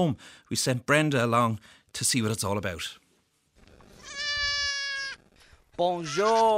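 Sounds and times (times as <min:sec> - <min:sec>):
speech: 0:00.0 - 0:03.0, 0:05.8 - 0:06.5
goat bleating on the back lawn of a family home in Kildare: 0:03.9 - 0:06.5.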